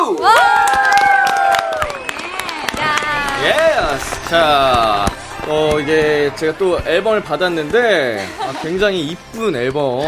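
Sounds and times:
small group cheering with high rising whoops in a studio: 0:00.0 - 0:04.3
steady clapping in a studio: 0:00.0 - 0:08.0
speech: 0:04.3 - 0:10.0
laughter: 0:05.8 - 0:09.2.

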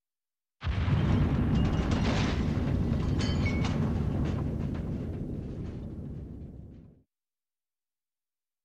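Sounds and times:
German artillery shell exploding with a deep sustained rumble: 0:00.6 - 0:07.0.

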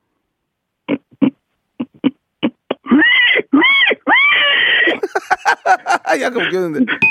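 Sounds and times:
voice imitating a pig squealing in fright: 0:00.9 - 0:04.6
laughter: 0:04.8 - 0:07.0
speech: 0:05.6 - 0:07.0.

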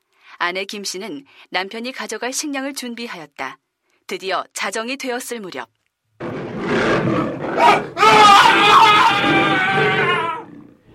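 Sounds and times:
speech: 0:00.4 - 0:06.4, 0:07.1 - 0:10.1
tiger roaring while seizing a man: 0:06.2 - 0:10.9.

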